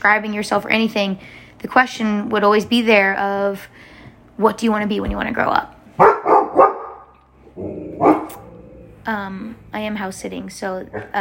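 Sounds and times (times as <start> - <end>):
speech: 0.0 - 6.1, 9.1 - 11.1
dog barking: 6.0 - 7.1, 8.0 - 8.5.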